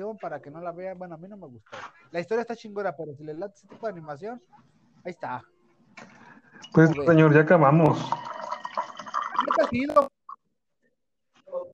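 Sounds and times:
speech: 0:00.0 - 0:08.3, 0:09.6 - 0:10.1
water dripping and trickling: 0:06.6 - 0:10.1
water pouring and splashing for a pet parrot: 0:07.8 - 0:10.0.

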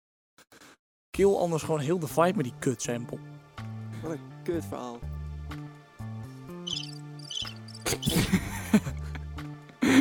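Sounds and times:
speech: 0:01.2 - 0:03.3, 0:04.0 - 0:05.6, 0:07.9 - 0:09.1
cricket chirping: 0:06.6 - 0:08.1.

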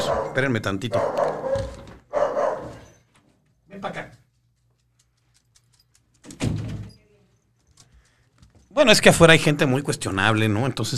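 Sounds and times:
dog barking: 0:00.0 - 0:03.0
speech: 0:00.3 - 0:01.7, 0:08.8 - 0:10.9.

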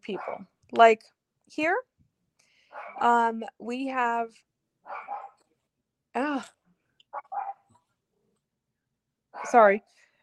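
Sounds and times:
speech: 0:00.0 - 0:01.9, 0:02.8 - 0:05.2, 0:06.2 - 0:06.6, 0:09.4 - 0:10.0
dog barking: 0:00.1 - 0:00.5, 0:02.7 - 0:03.0, 0:04.9 - 0:05.4, 0:07.1 - 0:07.7, 0:09.4 - 0:09.6.

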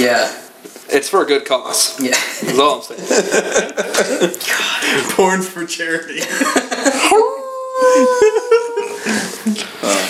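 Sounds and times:
speech: 0:00.0 - 0:10.0
laughter: 0:02.1 - 0:04.4, 0:06.2 - 0:09.7
person imitating a wolf howl: 0:07.0 - 0:09.0.

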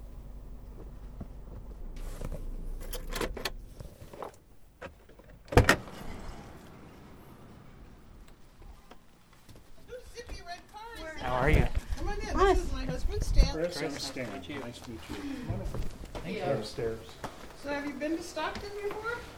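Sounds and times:
faint shuffling: 0:00.0 - 0:05.5, 0:06.2 - 0:19.3
car door thud: 0:00.0 - 0:05.8
rustling: 0:00.0 - 0:19.3
speech: 0:13.8 - 0:19.3.

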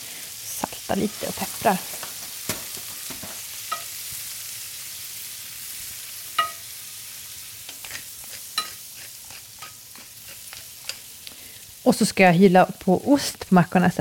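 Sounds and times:
chanterelle mushrooms frying in a pan: 0:00.0 - 0:14.0
speech: 0:00.9 - 0:02.0, 0:11.9 - 0:14.0.

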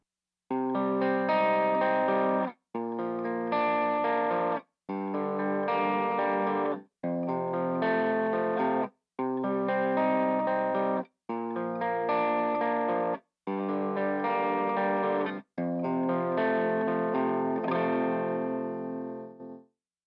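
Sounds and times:
electric guitar through low-gain overdrive pedal and amp strumming chords: 0:00.5 - 0:19.6.

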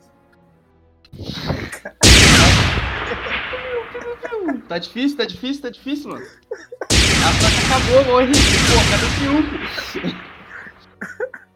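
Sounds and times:
laughter: 0:01.2 - 0:02.2, 0:02.8 - 0:04.7, 0:06.0 - 0:07.9, 0:09.6 - 0:11.5
distant video-game gunfire: 0:02.0 - 0:04.2, 0:06.9 - 0:10.8
heavy video-game blast with long tail: 0:02.0 - 0:04.5, 0:06.9 - 0:10.9
speech: 0:04.7 - 0:10.3.

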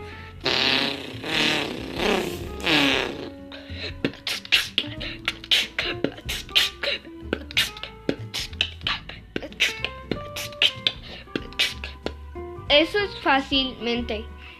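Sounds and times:
sharp rhythmic mouth clicks and beatbox-style percussion: 0:00.4 - 0:12.3
voice imitating a revving motorcycle: 0:00.5 - 0:03.3
speech: 0:13.3 - 0:14.4.

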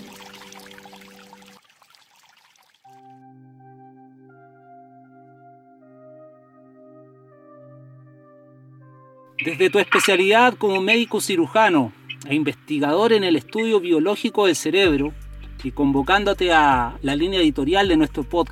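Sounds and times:
water pouring and splashing: 0:00.0 - 0:03.0
sustained musical tones: 0:02.9 - 0:16.6
speech: 0:09.4 - 0:18.5.

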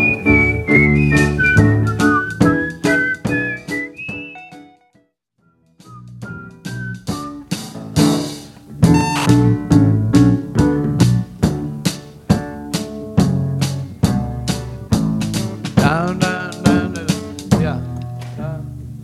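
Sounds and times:
full band backing with steady drum hits: 0:00.0 - 0:04.6, 0:05.8 - 0:17.9
human whistled melody: 0:00.0 - 0:07.6, 0:08.9 - 0:09.5.

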